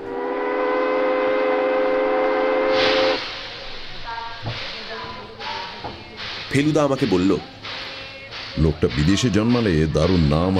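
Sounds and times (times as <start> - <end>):
steam whistle of a departing train: 0.0 - 3.4
soft rumbling of a departing train: 0.0 - 10.5
hissing steam from a departing train: 2.5 - 10.5
speech: 6.5 - 7.6, 8.6 - 10.5.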